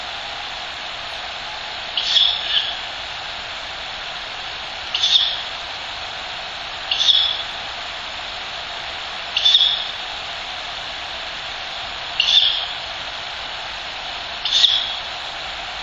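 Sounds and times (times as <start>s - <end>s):
steady background hiss: 0.0s - 15.8s
Ural Owl chick giving rasping hissed calls: 2.0s - 2.9s, 4.9s - 5.6s, 6.8s - 7.7s, 9.3s - 10.1s, 11.5s - 12.9s, 14.4s - 15.2s.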